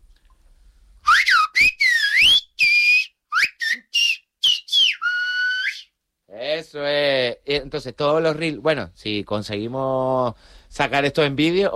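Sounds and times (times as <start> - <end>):
person whistling a melody: 1.0 - 5.9
speech: 6.7 - 11.7.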